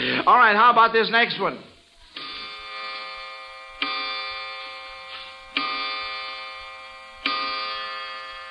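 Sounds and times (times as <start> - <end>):
speech: 0.2 - 1.7
clock striking: 2.2 - 8.4.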